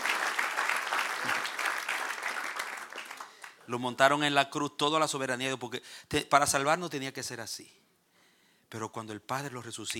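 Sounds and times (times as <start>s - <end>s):
church congregation applause: 0.0s - 3.7s
speech: 3.7s - 7.8s, 8.7s - 9.9s.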